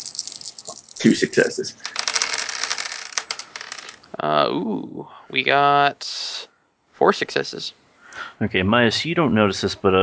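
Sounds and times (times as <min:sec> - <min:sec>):
dice rolled on a table during a tabletop role-playing game: 0:00.0 - 0:04.1
speech: 0:01.0 - 0:02.0, 0:04.2 - 0:06.2, 0:07.0 - 0:07.8, 0:08.4 - 0:10.0.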